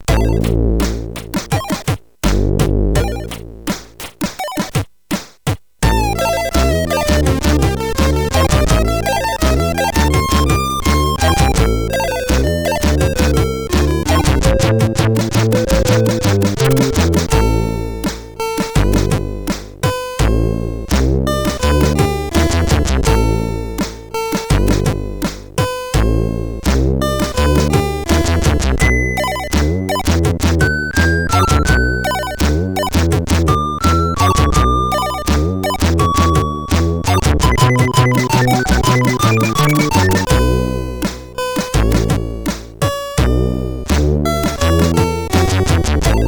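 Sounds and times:
SID chip beat: 0.0 - 46.2.

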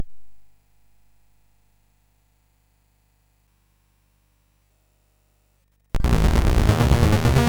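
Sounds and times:
Moog swing music on a MOS6581R2 chip: 6.0 - 7.4.

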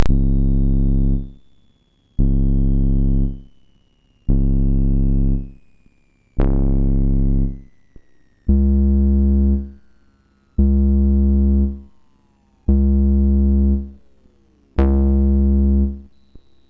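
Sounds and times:
synth bass from MOS6581R4 sound chip: 0.0 - 1.4, 2.2 - 3.5, 4.3 - 5.6, 6.4 - 7.7, 8.5 - 9.8, 10.6 - 11.9, 12.7 - 14.0, 14.8 - 16.1.

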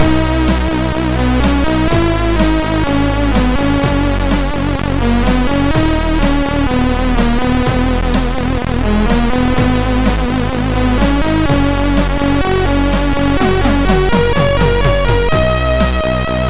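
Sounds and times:
loader music on a SID MOS6581R4 chip: 0.0 - 16.4.

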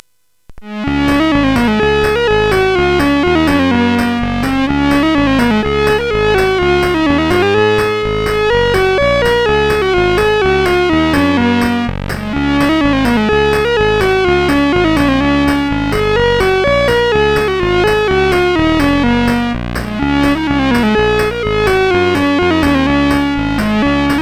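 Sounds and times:
SID CSG8580R5 chip game music: 0.6 - 24.2.

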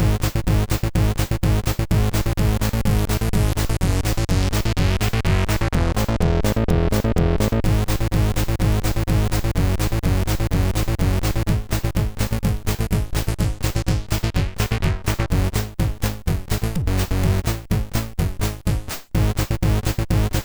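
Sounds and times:
techno music on a SID MOS6581R3 sound chip: 0.0 - 20.4.

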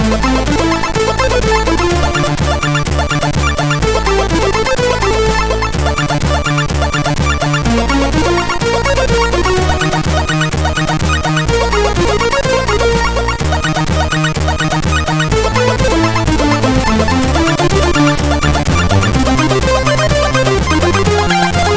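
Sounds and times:
chiptune loading music on a SID CSG8580R5 chip: 0.0 - 21.7.

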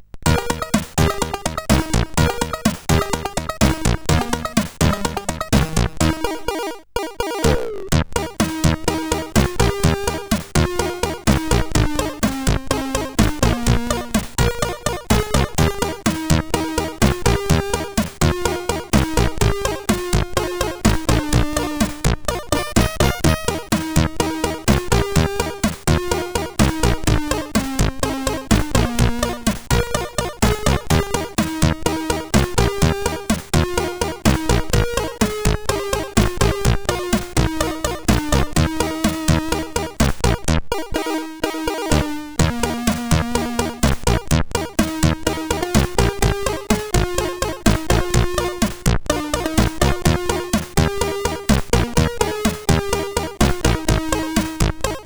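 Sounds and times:
chiptune loader music on SID CSG8580R5 sound chip: 0.2 - 55.0.

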